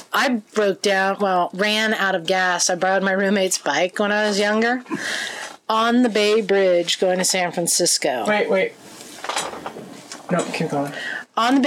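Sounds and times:
speech: 0.2s - 9.7s, 10.3s - 11.6s
cat knocking objects over: 9.2s - 10.6s.

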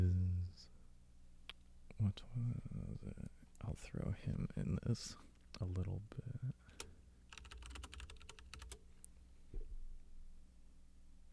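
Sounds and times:
low steady hum: 0.0s - 11.3s
speech: 2.0s - 6.9s
typing on a computer keyboard: 6.7s - 8.9s.

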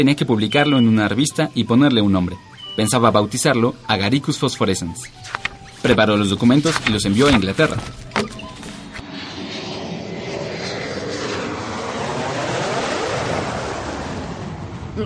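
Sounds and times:
speech: 0.0s - 8.4s
airplane engine roaring overhead: 5.0s - 15.0s.

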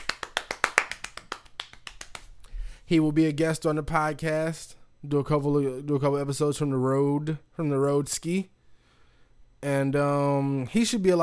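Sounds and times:
hand claps: 0.0s - 2.5s
speech: 2.9s - 8.6s, 9.6s - 11.2s.

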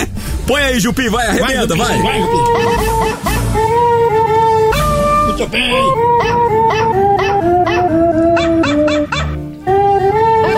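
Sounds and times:
national anthem music: 0.0s - 10.5s
speech: 0.5s - 4.3s, 5.4s - 7.1s
dog in a studio howling along to the national anthem: 2.1s - 10.5s.

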